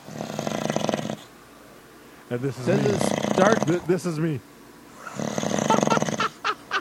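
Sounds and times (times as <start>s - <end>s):
loud rasping snore with fluttering vibration: 0.0s - 1.3s, 2.6s - 3.9s, 5.0s - 6.3s
speech: 2.3s - 4.5s.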